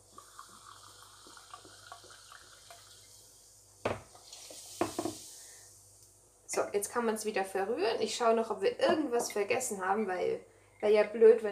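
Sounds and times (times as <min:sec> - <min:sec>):
carbonated liquid poured into a cup for cake batter, foaming: 0:00.0 - 0:03.5, 0:04.1 - 0:05.6
speech: 0:06.5 - 0:11.5.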